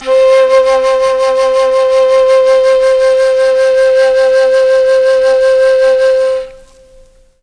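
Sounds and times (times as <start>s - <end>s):
C3 flute note on a mellotron: 0.0s - 7.4s.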